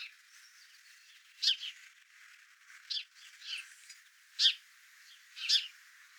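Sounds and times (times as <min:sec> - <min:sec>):
house sparrow chirps, Passer domesticus: 0:00.0 - 0:01.9, 0:02.8 - 0:05.8.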